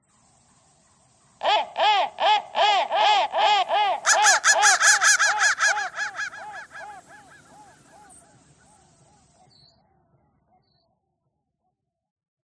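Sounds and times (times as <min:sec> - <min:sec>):
crow cawing: 0:01.4 - 0:08.0.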